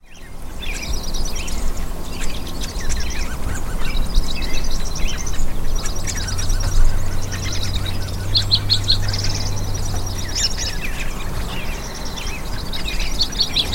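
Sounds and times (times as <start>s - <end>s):
birdsong: 0.0s - 13.7s.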